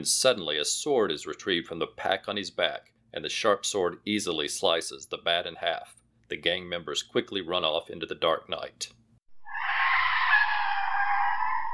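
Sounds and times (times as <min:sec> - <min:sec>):
speech: 0:00.0 - 0:09.0
Rolls Royce tyres screeching to a halt: 0:09.5 - 0:11.7.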